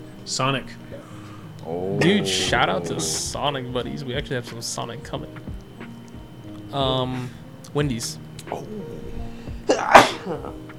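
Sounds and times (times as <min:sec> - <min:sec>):
low hum: 0:00.0 - 0:10.7
speech: 0:00.2 - 0:05.5, 0:06.7 - 0:09.1, 0:09.7 - 0:10.6
sneeze: 0:09.7 - 0:10.4.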